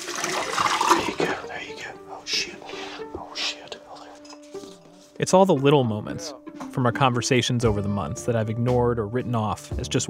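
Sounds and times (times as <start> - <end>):
chemical pouring and splashing into a bucket: 0.0 - 1.4
liquid trickling: 0.0 - 1.6
soft breathy hisses: 1.4 - 5.2
speech: 5.2 - 10.0.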